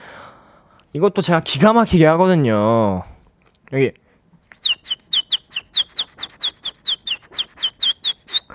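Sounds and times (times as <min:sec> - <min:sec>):
speech: 0:00.9 - 0:03.1, 0:03.7 - 0:04.0
voice imitating a baby chick's peeping with high bright chirps: 0:04.5 - 0:08.5.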